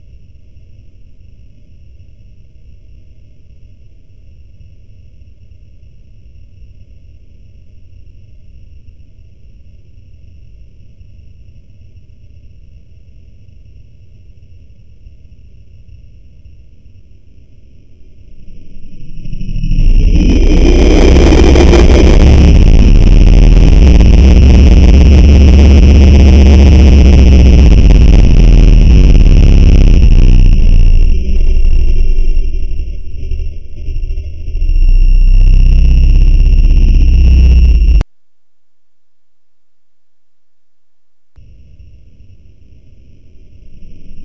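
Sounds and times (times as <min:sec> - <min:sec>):
UFO hovering and taking off: 0:18.5 - 0:38.0.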